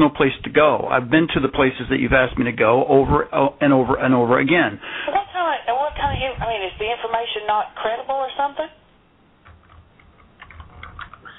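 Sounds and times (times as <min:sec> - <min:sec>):
speech: 0:00.0 - 0:08.8
typing on a computer keyboard in a chat room: 0:09.5 - 0:11.3.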